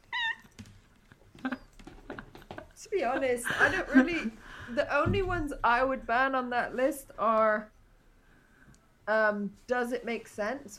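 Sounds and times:
cat meowing: 0:00.0 - 0:00.6
speech: 0:02.8 - 0:07.8, 0:09.1 - 0:10.7.

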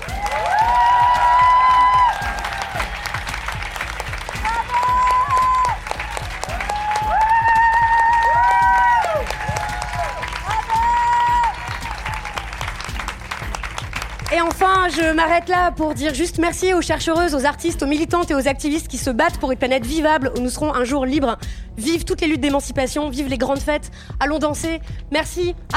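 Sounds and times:
crowd cheering and whooping: 0:00.0 - 0:13.0
large audience applause: 0:00.0 - 0:15.4
speech: 0:15.2 - 0:25.7.

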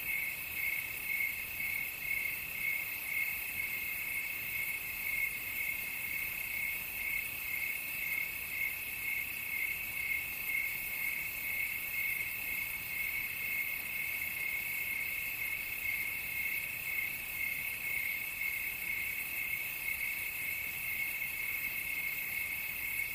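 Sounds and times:
crickets chirping at night: 0:00.0 - 0:23.1.

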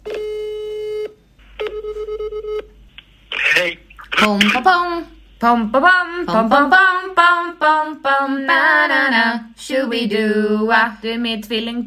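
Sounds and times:
ringing-out tone of an outgoing telephone call: 0:00.1 - 0:02.6
speech: 0:03.6 - 0:11.8.

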